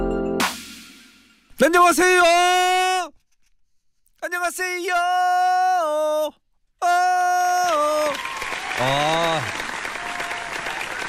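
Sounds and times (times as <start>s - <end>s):
speech: 1.6s - 2.8s, 4.2s - 9.6s
audience applause welcoming a DJ: 7.6s - 11.0s.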